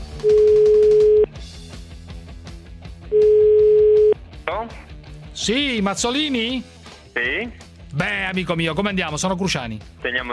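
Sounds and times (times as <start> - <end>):
telephone line tone while placing a call: 0.2 - 1.3, 3.1 - 4.2
speech: 5.5 - 10.3.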